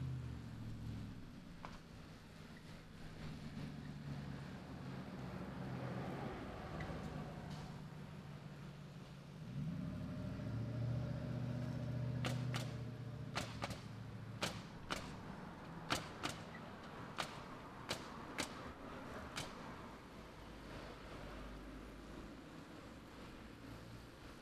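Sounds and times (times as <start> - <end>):
passing traffic: 0.0 - 24.4
wind: 0.0 - 24.4
nail gun firing at a construction site: 12.2 - 15.3, 15.9 - 19.6.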